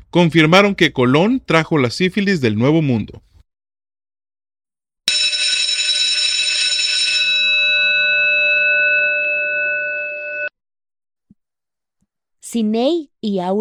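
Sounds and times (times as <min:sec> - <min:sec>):
speech: 0:00.1 - 0:03.3, 0:12.5 - 0:13.5
loud electronic doorbell-style chime: 0:05.1 - 0:10.5.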